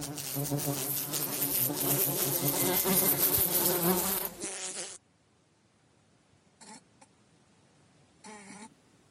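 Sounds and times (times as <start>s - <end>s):
dense buzzing of flies: 0.0s - 5.0s.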